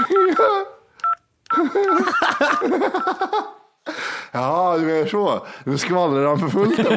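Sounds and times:
person laughing: 0.0 - 0.8, 1.5 - 3.6
person vocally imitating phone keypad beeping tones: 0.0 - 3.2
speech: 2.6 - 3.6, 4.3 - 6.9.

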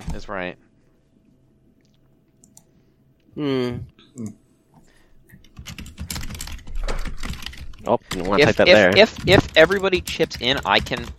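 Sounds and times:
speech: 0.2 - 0.7, 3.4 - 4.4, 7.8 - 11.1
typing a message on a computer keyboard: 5.4 - 11.1.

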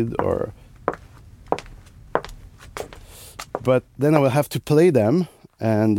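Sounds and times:
speech: 0.0 - 0.6, 3.6 - 5.9
foley hard-soled footsteps on a firm surface: 0.0 - 4.5.

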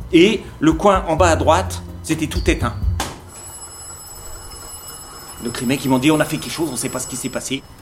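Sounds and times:
speech: 0.1 - 2.8, 5.4 - 7.8
railway signal box alarm bell ringing: 2.2 - 7.8.

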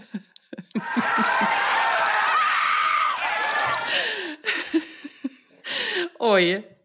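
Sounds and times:
laughter: 0.0 - 5.5
female cross-country skier screaming during a ski sprint final: 0.8 - 3.9
speech: 6.3 - 6.7.

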